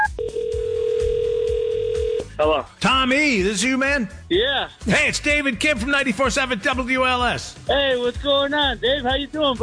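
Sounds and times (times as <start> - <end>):
steady continuous telephone line tone: 0.2 - 2.2
speech: 2.4 - 9.6.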